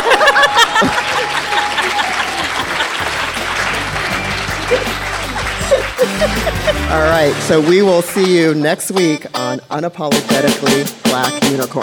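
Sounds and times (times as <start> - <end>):
people laughing: 0.0 - 7.9
crowd clapping in dense continuous applause: 0.0 - 9.6
speech: 6.9 - 11.8.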